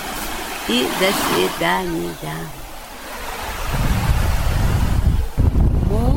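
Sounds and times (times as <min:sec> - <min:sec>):
sea waves washing onto the shore: 0:00.0 - 0:05.7
speech: 0:00.7 - 0:02.6
wind buffeting the microphone: 0:02.6 - 0:06.1.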